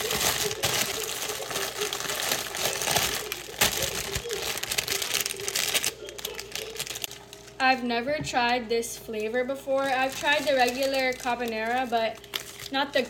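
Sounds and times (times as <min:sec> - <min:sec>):
cream carbonara instant noodle pack being torn open and handled: 0:00.0 - 0:07.6, 0:09.2 - 0:13.0
speech: 0:07.7 - 0:13.0.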